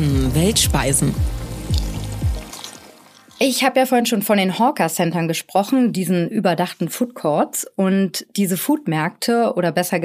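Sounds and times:
speech: 0.0 - 1.4, 3.4 - 10.0
water from an indoor waterfall inside an airport pouring and splashing: 0.0 - 3.5.

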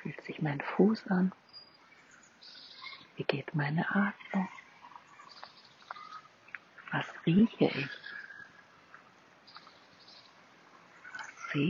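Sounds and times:
speech: 0.4 - 1.4, 3.2 - 4.6, 6.9 - 8.1
faint bird chirps: 1.4 - 3.2, 3.9 - 8.8, 9.4 - 11.6.

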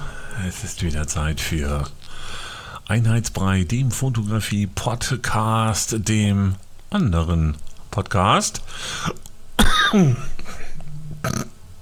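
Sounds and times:
speech: 0.4 - 9.3, 9.9 - 10.3, 11.2 - 11.5
heavy throaty cough with a rough drawn-out tail: 9.0 - 11.5.

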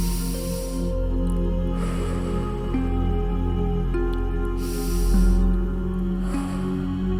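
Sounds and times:
deep breaths in and out: 0.0 - 1.1, 1.7 - 2.8, 4.6 - 7.1
soft sustained musical tones: 0.0 - 7.1.

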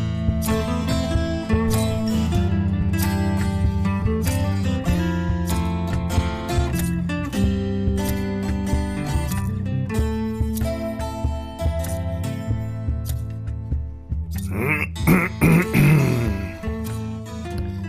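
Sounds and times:
instrumental music: 0.0 - 17.8
person clearing throat: 14.4 - 16.7.

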